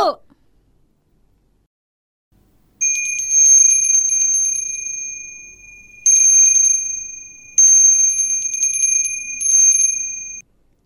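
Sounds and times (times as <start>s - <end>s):
bell ringing with fast rattling trill: 2.8s - 10.4s.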